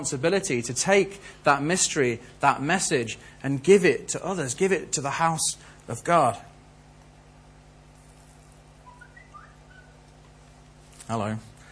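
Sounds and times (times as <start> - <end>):
speech: 0.0 - 6.5, 11.1 - 11.5
low mechanical hum: 0.0 - 11.7
whistled notes: 8.8 - 10.0.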